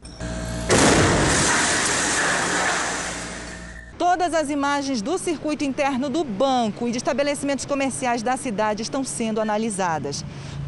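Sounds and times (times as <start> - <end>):
low steady hum: 0.0 - 4.1
loud explosion of a cylinder inside a bank branch during a robbery: 0.7 - 3.7
sustained roaring crackling wash of noise: 0.7 - 3.8
speech: 4.1 - 10.6.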